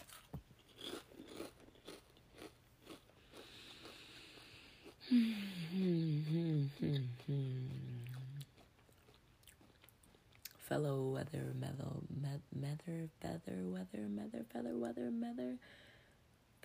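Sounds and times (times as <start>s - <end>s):
person chewing crunchy food: 0.0s - 5.0s, 6.2s - 10.6s
speech: 10.7s - 15.9s.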